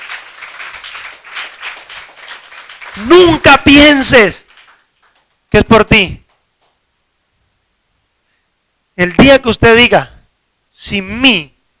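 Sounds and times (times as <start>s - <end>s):
church congregation applauding during a sermon: 0.0s - 5.5s
speech: 3.0s - 4.4s, 5.5s - 6.2s, 9.0s - 10.1s, 10.8s - 11.5s.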